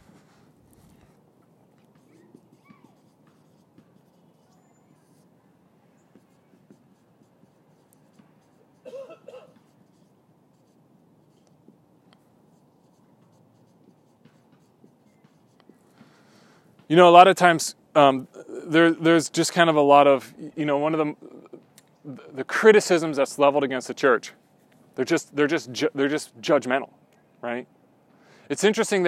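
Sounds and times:
pen or pencil writing things down: 0.0 - 16.0
speech: 16.9 - 21.3, 22.1 - 24.4, 25.0 - 27.8, 28.5 - 29.0.

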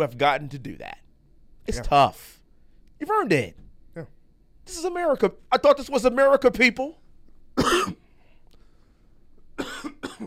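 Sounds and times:
speech: 0.0 - 1.0, 1.6 - 2.4, 3.0 - 7.0, 7.6 - 8.0
person coughing harshly: 7.6 - 8.1, 9.6 - 10.2.

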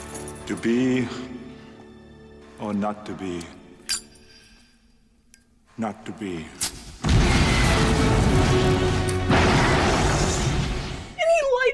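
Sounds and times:
speech: 0.5 - 1.4, 2.6 - 3.6, 5.8 - 6.7
loud explosion in action movie scene: 7.0 - 11.2.

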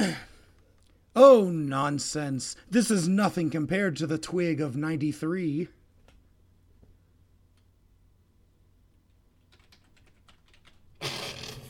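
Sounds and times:
speech: 1.2 - 5.8
typing on a computer keyboard: 9.3 - 10.9.

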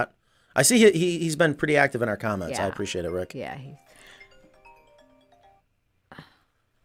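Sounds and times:
speech: 0.0 - 4.1
phone ringtone with a short electronic melody: 2.4 - 5.8.

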